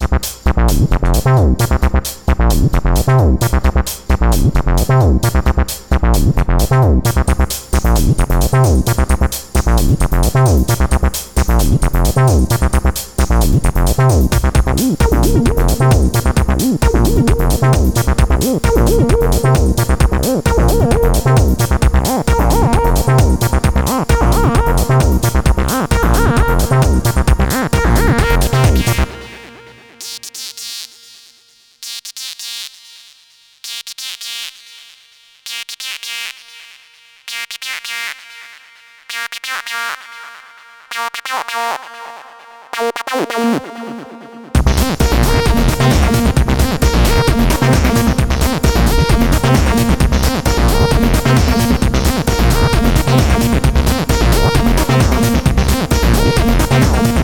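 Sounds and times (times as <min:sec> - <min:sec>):
MIDIbox SID synthesizer bassline: 0:00.0 - 0:30.3, 0:39.1 - 0:57.2.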